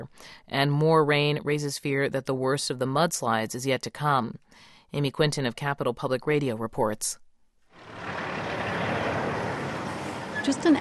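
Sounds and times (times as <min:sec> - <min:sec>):
speech: 0:00.0 - 0:07.2, 0:10.4 - 0:10.7
heavy trucks hauling burned timber through a national forest roaring past: 0:07.8 - 0:10.7.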